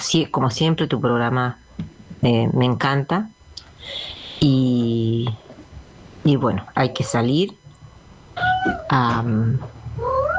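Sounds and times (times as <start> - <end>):
speech: 0.0 - 5.4, 6.2 - 7.6, 8.4 - 10.2
pet cat meowing for attention: 8.4 - 8.9, 10.0 - 10.3.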